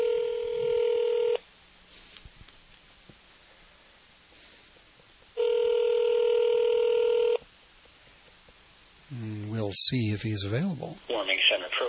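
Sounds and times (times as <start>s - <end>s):
long electronic telephone ring tones through a handset: 0.0s - 1.4s, 5.4s - 7.4s
speech: 9.8s - 11.8s.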